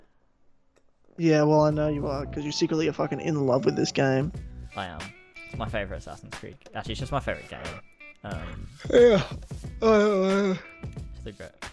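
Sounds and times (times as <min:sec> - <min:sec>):
speech: 0:01.2 - 0:11.7
big drawn-out yawn from one person: 0:08.4 - 0:10.7.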